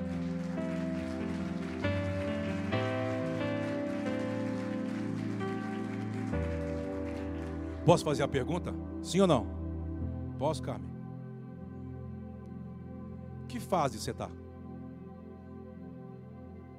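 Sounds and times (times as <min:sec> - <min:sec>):
crowd applause: 0:00.0 - 0:08.4
sustained keyboard chords: 0:00.0 - 0:16.7
speech: 0:07.9 - 0:09.6, 0:10.4 - 0:10.9, 0:13.5 - 0:14.4.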